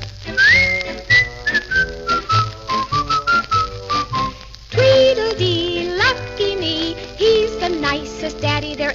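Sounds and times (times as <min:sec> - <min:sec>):
bouncy upbeat instrumental accompaniment: 0:00.0 - 0:08.9
person whistling a bright cheerful melody: 0:00.3 - 0:04.4.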